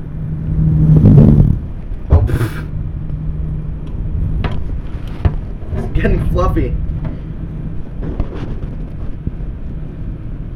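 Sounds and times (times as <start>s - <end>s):
car engine at about 1500 RPM revving, heard from the intake side: 0.0s - 7.9s
speech: 6.0s - 6.9s.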